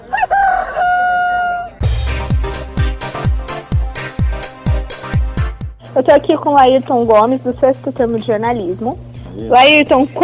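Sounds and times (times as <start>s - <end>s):
rooster crowing: 0.0s - 1.8s
upbeat music with a steady thumping drum beat: 1.8s - 10.2s
speech: 6.0s - 10.2s.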